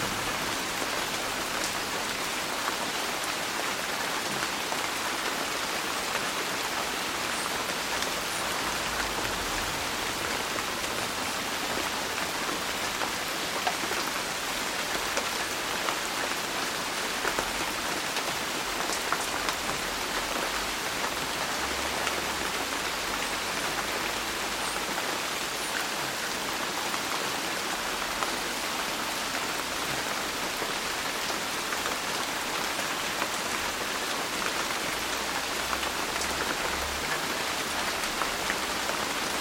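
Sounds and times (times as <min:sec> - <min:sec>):
heavy rain falling on a roof in daytime: 0:00.0 - 0:39.3.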